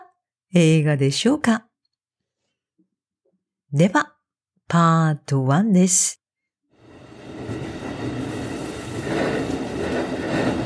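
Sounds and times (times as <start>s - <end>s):
speech: 0.5s - 1.7s, 3.7s - 4.1s, 4.7s - 6.2s
rumble inside a moving train: 6.8s - 10.6s.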